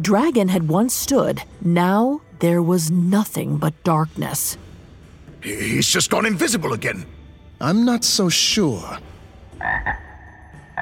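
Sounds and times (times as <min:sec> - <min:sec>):
speech: 0:00.0 - 0:04.7, 0:05.4 - 0:10.0
toad croaking in short buzzy bursts: 0:09.6 - 0:10.8.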